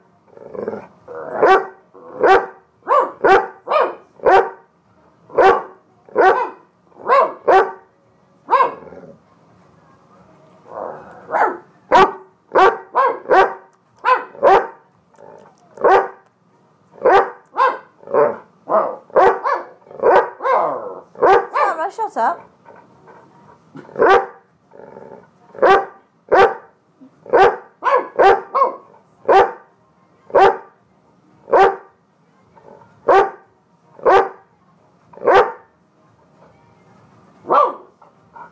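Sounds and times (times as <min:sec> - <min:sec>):
dog barking: 0:01.4 - 0:04.6, 0:05.4 - 0:07.8, 0:08.5 - 0:08.9, 0:11.3 - 0:14.8, 0:15.8 - 0:16.2, 0:17.0 - 0:21.8, 0:23.9 - 0:24.4, 0:25.6 - 0:26.7, 0:27.3 - 0:29.6, 0:30.3 - 0:30.7, 0:31.5 - 0:31.9, 0:33.1 - 0:34.4, 0:35.2 - 0:35.7, 0:37.5 - 0:38.5.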